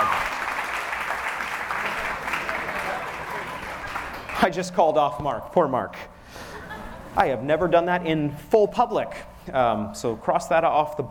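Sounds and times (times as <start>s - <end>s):
crowd applause with hand claps: 0.0s - 4.5s
speech: 4.4s - 6.1s, 7.2s - 11.0s.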